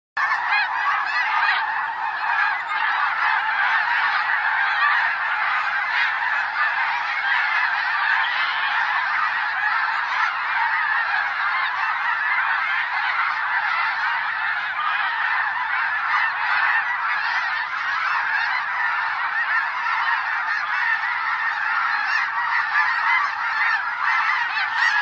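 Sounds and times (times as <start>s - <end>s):
snow goose calling: 0.2s - 25.0s.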